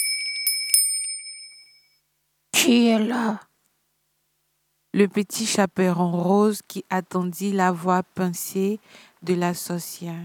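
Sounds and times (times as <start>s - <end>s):
doorbell ringing at a front door: 0.0s - 2.0s
speech: 2.7s - 3.5s, 5.0s - 10.2s.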